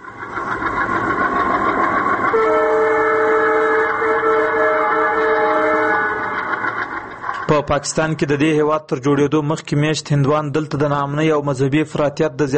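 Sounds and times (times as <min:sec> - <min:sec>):
train rumbling: 0:00.0 - 0:12.5
multi-toned train horn: 0:02.3 - 0:06.6
speech: 0:07.6 - 0:12.5.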